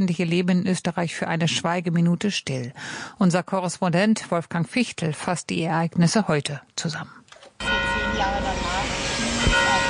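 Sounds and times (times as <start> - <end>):
speech: 0.0 - 9.8
church bell ringing on the main square: 7.6 - 9.8.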